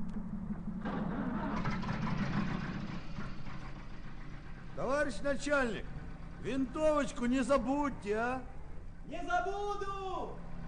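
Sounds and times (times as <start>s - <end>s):
car engine idling then revving up: 0.2s - 8.2s
speech: 4.8s - 5.9s, 6.4s - 8.5s, 9.0s - 10.4s.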